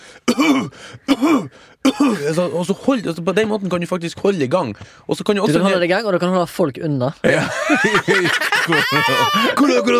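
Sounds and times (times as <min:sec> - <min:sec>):
deep deliberate voiced coughs: 0:00.2 - 0:02.6
speech: 0:00.4 - 0:09.9
laughter: 0:07.3 - 0:09.9.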